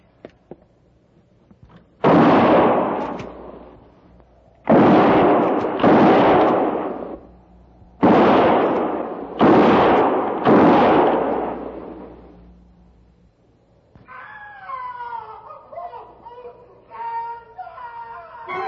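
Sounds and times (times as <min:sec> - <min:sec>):
gunshots fired between the trees: 0:02.0 - 0:03.9, 0:04.6 - 0:07.3, 0:08.0 - 0:12.4.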